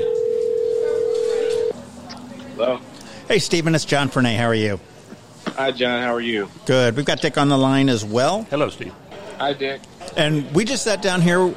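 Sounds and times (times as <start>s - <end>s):
telephone ringback tone while calling: 0.0s - 1.7s
faint murmur: 0.0s - 11.5s
speech: 2.6s - 4.9s, 5.6s - 11.5s.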